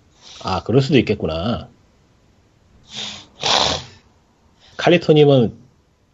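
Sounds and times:
speech: 0.4s - 1.8s, 4.8s - 5.6s
heavy rough breathing of a meeting participant picked up by an open microphone: 2.8s - 4.8s.

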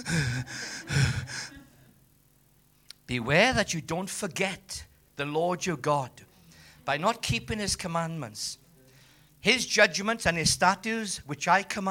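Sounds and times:
speech: 0.0s - 1.2s, 3.1s - 6.3s, 6.9s - 8.6s, 9.4s - 11.8s
preacher catching his breath with heavy exhalations and gasps: 0.0s - 1.6s.

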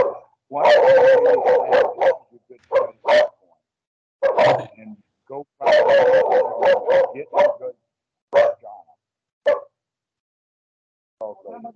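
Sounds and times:
dogs barking: 0.0s - 3.6s, 4.2s - 4.8s, 5.6s - 9.8s
speech: 0.5s - 3.2s.

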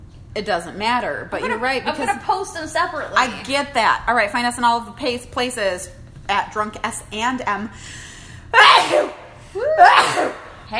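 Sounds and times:
speech: 0.4s - 10.7s
person sneezing close to the microphone: 8.6s - 10.6s.

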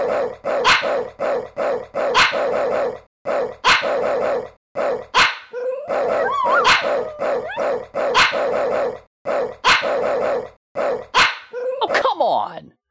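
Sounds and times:
dog barking rhythmically: 0.0s - 12.6s
speech: 0.1s - 3.0s
dog whining: 5.6s - 7.7s.

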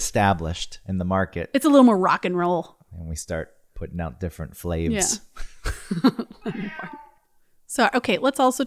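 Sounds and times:
speech: 0.1s - 7.0s, 7.7s - 8.6s
cat meowing in a basement: 6.4s - 7.2s.

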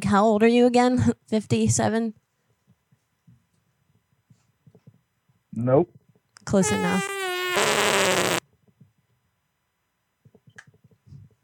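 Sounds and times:
speech: 0.0s - 2.2s, 5.6s - 7.2s
loud buzzy fart distorted over a phone call: 6.6s - 8.4s.

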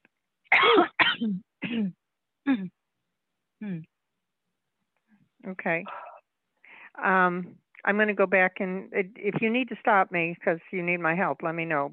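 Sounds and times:
person coughing: 0.5s - 2.7s
speech: 1.2s - 2.8s, 3.6s - 3.9s, 5.4s - 6.1s, 7.0s - 11.9s.

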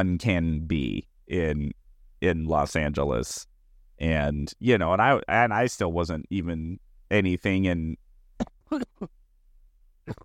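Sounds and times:
speech: 0.0s - 9.2s, 10.1s - 10.2s
person coughing: 8.4s - 9.2s, 10.1s - 10.2s.

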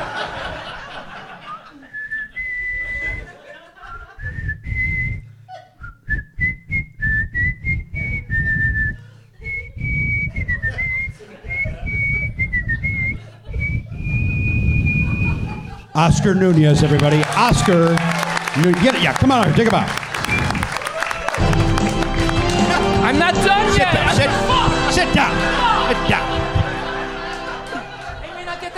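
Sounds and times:
crowd chuckling and laughing: 0.0s - 4.4s, 9.0s - 14.2s, 14.9s - 28.7s
person whistling a slow lilting melody: 1.9s - 3.3s, 3.9s - 15.9s
speech: 16.0s - 20.0s, 25.0s - 26.4s.

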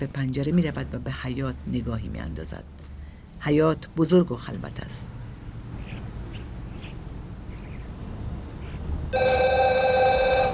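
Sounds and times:
speech: 0.0s - 5.2s
black telephone ringing on an open kitchen counter: 9.2s - 10.5s.

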